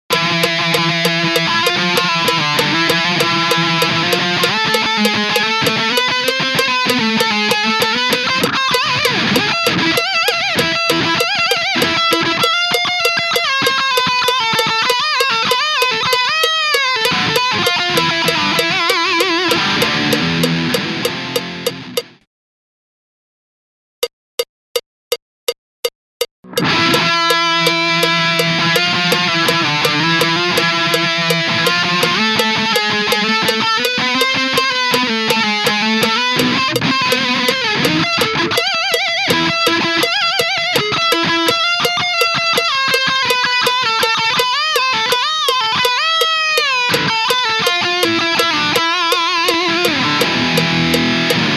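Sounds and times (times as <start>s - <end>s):
thrash music: 0.1s - 22.0s, 26.5s - 51.4s.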